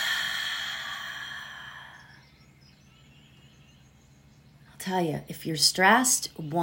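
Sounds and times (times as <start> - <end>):
long slow breath out during a guided breathing exercise: 0.0 - 2.3
speech: 4.8 - 6.6.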